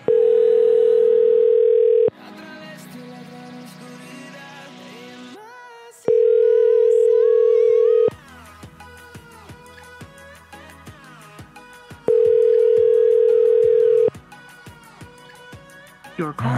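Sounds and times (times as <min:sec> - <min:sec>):
telephone ringback tone on an unanswered call: 0:00.0 - 0:02.1, 0:06.1 - 0:08.1, 0:12.1 - 0:14.1.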